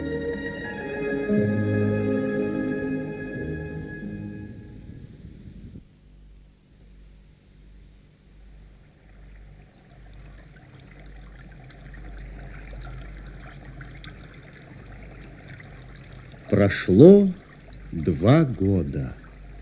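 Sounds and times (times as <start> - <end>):
droning tonal hum: 0.0 - 19.6
sea water churning and washing: 8.8 - 19.6
speech: 16.6 - 17.4, 18.0 - 19.2.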